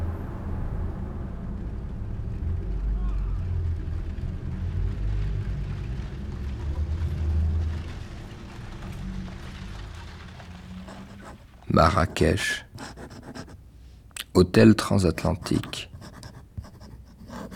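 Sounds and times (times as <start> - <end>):
buses rumbling on a boulevard heard through an opened window: 0.0 - 12.9
speech: 11.7 - 12.9, 14.4 - 15.9.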